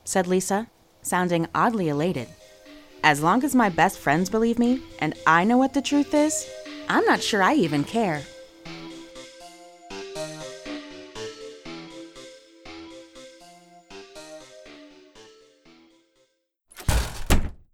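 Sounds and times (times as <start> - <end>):
speech: 0.1 - 2.4, 3.0 - 8.3
soft tonal music: 1.0 - 16.2
screen door of a camp office banging against a wall: 16.7 - 17.7.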